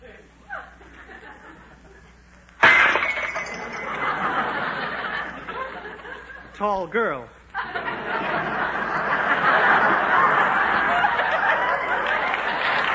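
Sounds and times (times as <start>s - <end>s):
laughter: 0.5s - 2.1s, 3.6s - 6.5s, 7.5s - 12.9s
rattling, clattering dish debris: 2.6s - 4.3s
tray loaded with dishes crashing to the floor: 2.6s - 4.8s
speech: 6.6s - 8.5s.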